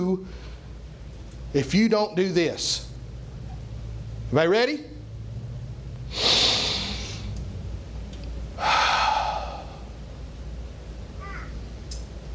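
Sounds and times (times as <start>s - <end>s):
speech: 0.0s - 0.5s, 1.5s - 2.9s, 4.3s - 4.9s
person deep breathing: 6.1s - 7.4s, 8.6s - 10.1s.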